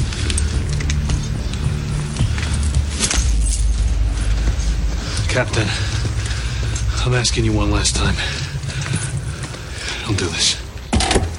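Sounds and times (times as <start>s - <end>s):
keys jingling and clinking as they are handed over: 0.0s - 4.2s
steady low rumble of noise: 0.0s - 11.3s
speech: 5.4s - 6.0s, 7.0s - 8.4s, 10.1s - 10.6s.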